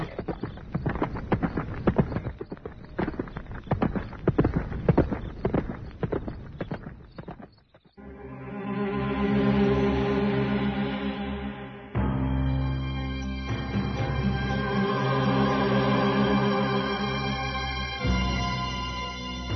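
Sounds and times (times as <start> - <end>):
horse hooves clip-clopping: 0.0 - 8.0
sustained tonal sound: 8.0 - 19.5.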